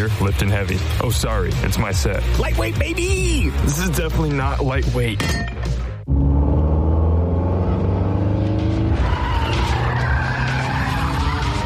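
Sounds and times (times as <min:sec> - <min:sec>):
speech: 0:00.0 - 0:06.2
car tires screeching in a long skid as the car pulls up: 0:06.1 - 0:11.6.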